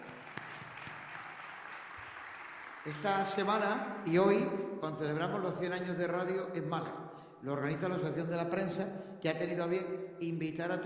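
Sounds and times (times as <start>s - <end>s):
applause for award recipients at a journalists' ceremony: 0.0s - 3.6s
speech: 2.8s - 10.8s.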